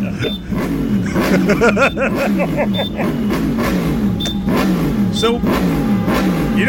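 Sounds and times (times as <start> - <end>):
laughter: 0.0 - 3.3
busy road traffic on the M4: 0.0 - 6.6
speech: 0.2 - 0.6, 1.2 - 3.4, 4.7 - 6.6.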